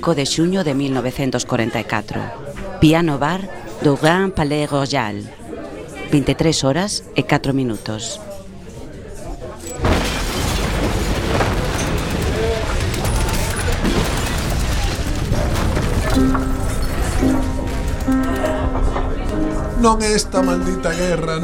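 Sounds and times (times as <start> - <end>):
speech: 0.0 - 5.4, 6.1 - 8.3, 19.8 - 21.4
bombs falling and exploding in wartime near the Normandy coast: 9.7 - 19.2.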